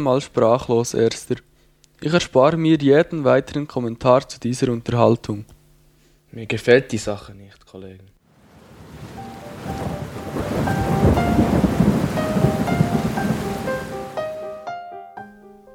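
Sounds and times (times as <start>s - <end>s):
speech: 0.0s - 5.6s, 6.3s - 8.2s
steady hiss of rain: 8.3s - 14.6s
thunder rumbling in a thunderstorm: 8.5s - 14.6s
sustained musical tones: 9.1s - 15.7s.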